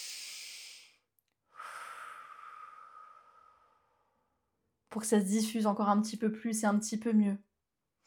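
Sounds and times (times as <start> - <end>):
deep breath with long airy inhale and slow exhale: 0.0 - 4.3
speech: 4.9 - 7.5.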